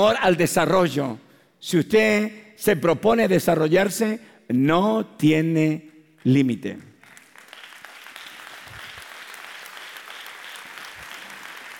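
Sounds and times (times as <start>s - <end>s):
speech: 0.0s - 6.9s
audience applauding: 7.0s - 11.7s.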